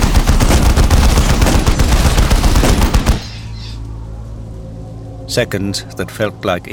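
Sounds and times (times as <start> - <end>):
dense sustained barrage of gunfire: 0.0 - 3.3
low rumble: 3.3 - 6.7
speech: 5.3 - 6.7.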